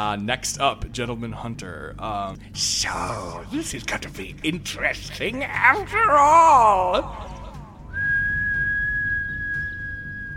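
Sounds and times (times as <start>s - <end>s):
speech: 0.0s - 7.3s
soft whistle: 7.9s - 10.3s.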